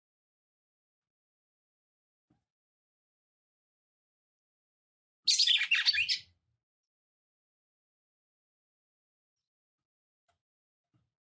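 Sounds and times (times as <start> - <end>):
female red-cowled cardinal song of jumbled bright chirps and warbled high notes: 5.3 - 6.4.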